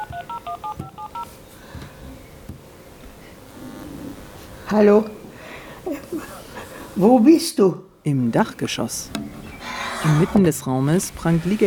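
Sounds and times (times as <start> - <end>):
dual-tone beeps from a smartphone keypad as a woman dials: 0.0 - 1.3
speech: 4.7 - 5.2, 7.0 - 9.2, 10.0 - 11.6.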